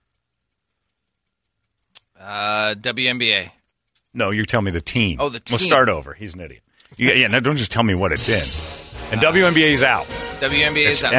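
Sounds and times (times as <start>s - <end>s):
game clock ticking: 0.0s - 6.0s
speech: 2.2s - 11.1s.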